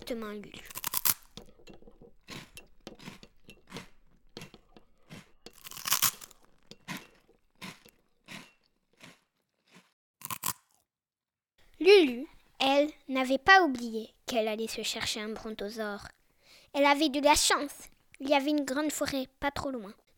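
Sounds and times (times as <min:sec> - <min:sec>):
speech: 0:00.1 - 0:00.7, 0:11.8 - 0:20.0
biscuits being crunched and munched in a kitchen: 0:00.6 - 0:01.4, 0:05.1 - 0:07.0, 0:07.6 - 0:10.8.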